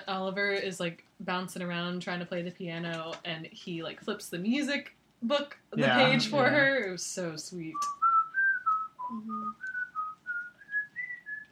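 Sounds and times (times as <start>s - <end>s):
speech: 0.1s - 8.0s, 9.1s - 9.7s
person whistling a short melody: 7.8s - 11.5s.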